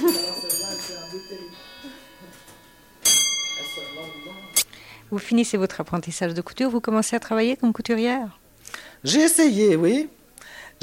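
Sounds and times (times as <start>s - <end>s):
bell ringing: 0.0s - 4.7s
speech: 5.1s - 8.4s, 9.0s - 10.2s.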